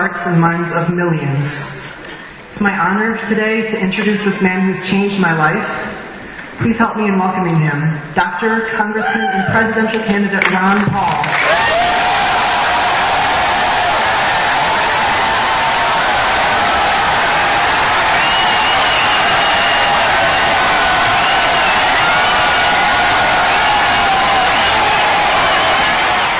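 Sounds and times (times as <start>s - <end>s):
speech: 0.1s - 6.0s, 6.6s - 11.6s
whoops and shouts from the crowd: 9.0s - 9.6s, 11.4s - 26.3s
crowd of thousands cheering in a giant auditorium: 11.2s - 26.3s.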